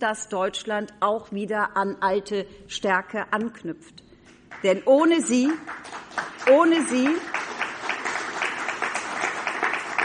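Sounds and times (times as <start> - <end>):
speech: 0.0 - 7.5
audience applauding: 5.4 - 10.0.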